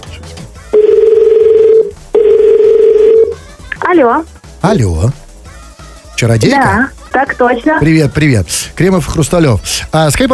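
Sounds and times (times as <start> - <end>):
telephone ringback tone of an outgoing call: 0.8 - 3.4
speech: 4.0 - 5.2, 6.2 - 10.3.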